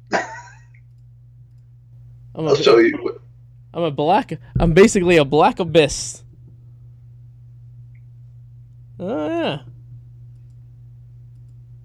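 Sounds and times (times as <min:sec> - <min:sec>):
steady low electrical hum: 0:00.0 - 0:11.8
speech: 0:02.4 - 0:06.2
computer mouse double clicking: 0:11.3 - 0:11.6.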